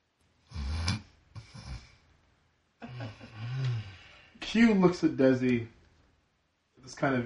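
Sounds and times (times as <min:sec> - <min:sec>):
person imitating snoring: 0:00.5 - 0:01.8, 0:02.9 - 0:04.0
speech: 0:04.5 - 0:05.8, 0:06.9 - 0:07.2.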